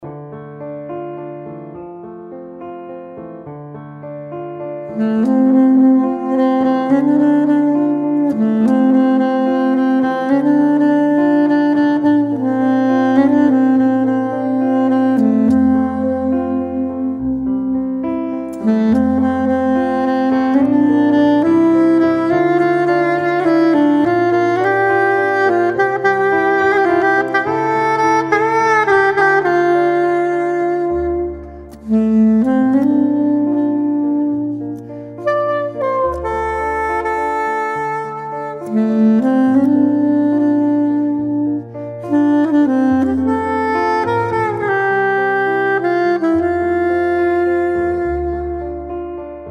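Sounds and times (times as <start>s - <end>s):
piano: 0.0s - 49.4s
soprano saxophone: 0.0s - 49.4s.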